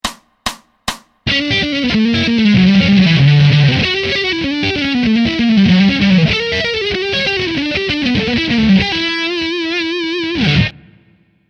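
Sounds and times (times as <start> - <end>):
fast E Dorian spiral lick: 0.0 - 10.7.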